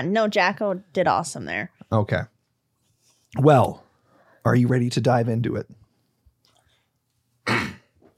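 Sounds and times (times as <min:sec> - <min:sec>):
speech: 0:00.0 - 0:02.3, 0:03.3 - 0:03.8, 0:04.4 - 0:05.8
person coughing after taking a drink: 0:07.4 - 0:08.0
throat clearing: 0:07.4 - 0:08.0.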